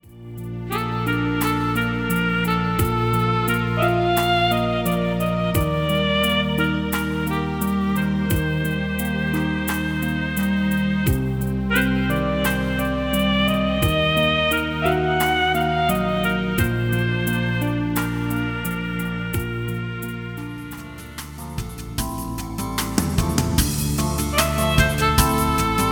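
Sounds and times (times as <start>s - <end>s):
saxophone background music: 0.0s - 25.9s.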